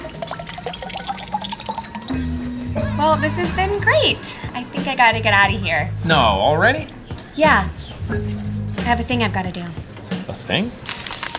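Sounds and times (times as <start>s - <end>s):
gasoline pouring into a bottle: 0.0s - 2.2s, 10.9s - 11.3s
speech: 3.0s - 9.8s, 10.5s - 10.8s.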